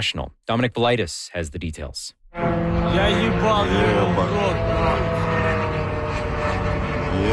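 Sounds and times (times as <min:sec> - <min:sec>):
speech: 0:00.0 - 0:05.4, 0:07.2 - 0:07.3
drone buzzing propeller hum overhead: 0:02.2 - 0:07.3.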